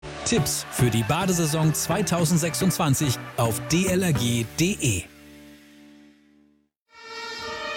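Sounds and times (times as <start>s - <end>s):
speech: 0.3s - 5.1s
emergency vehicle siren: 6.9s - 7.7s.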